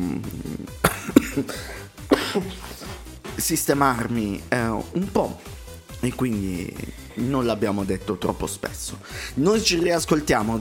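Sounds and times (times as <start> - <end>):
person coughing: 0.1 - 3.0
speech: 1.4 - 2.7, 3.4 - 10.6.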